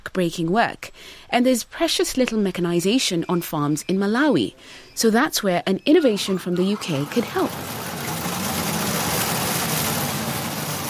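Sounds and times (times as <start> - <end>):
speech: 0.2 - 7.8
small solar-powered two-wheeled walk-behind tractor motor humming: 6.0 - 10.8.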